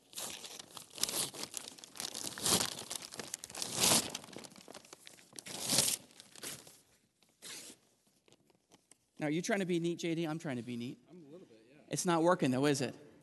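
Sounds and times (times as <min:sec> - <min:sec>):
two glued sheets of paper tearing apart: 0:00.0 - 0:06.7, 0:07.4 - 0:07.9
speech: 0:09.2 - 0:11.0, 0:11.9 - 0:13.0.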